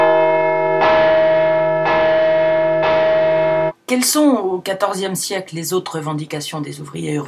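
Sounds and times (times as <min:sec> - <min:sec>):
large work bell tolling: 0:00.0 - 0:03.7
speech: 0:03.9 - 0:07.2.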